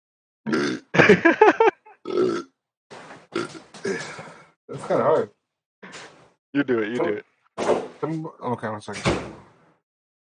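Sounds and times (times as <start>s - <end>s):
person burping loudly: 0.5s - 1.1s, 1.8s - 2.6s, 3.3s - 4.4s
speech: 0.5s - 2.5s, 4.1s - 5.4s, 6.5s - 9.4s
person laughing: 1.0s - 2.0s.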